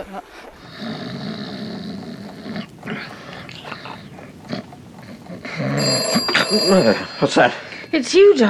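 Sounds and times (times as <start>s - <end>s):
speech: 0.0s - 0.9s, 6.5s - 8.4s
low snore-like rumbling: 0.5s - 8.4s
telephone bell ringing: 3.2s - 8.2s.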